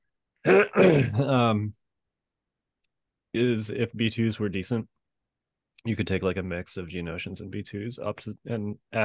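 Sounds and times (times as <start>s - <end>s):
rough voiced cough-like rasp: 0.4s - 1.4s
speech: 0.4s - 1.8s, 3.4s - 5.0s, 5.8s - 9.0s
throat clearing: 0.5s - 1.6s.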